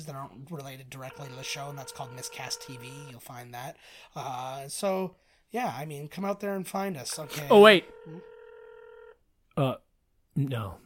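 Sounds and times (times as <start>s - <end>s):
speech: 0.0s - 8.3s, 9.6s - 9.8s, 10.4s - 10.8s
telephone ringback tone from an outgoing phone call: 1.0s - 3.2s, 7.1s - 9.2s.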